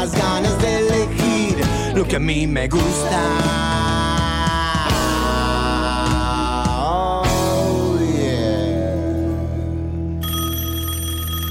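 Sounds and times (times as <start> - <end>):
song playing: 0.0 - 10.5
speech: 2.0 - 3.9
telephone ringing with bright electronic tone: 10.2 - 11.4.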